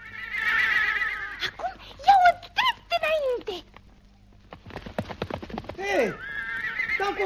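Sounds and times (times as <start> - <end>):
horse whinnying: 0.0 - 1.6, 5.8 - 7.2
horse hooves galloping: 2.0 - 7.2.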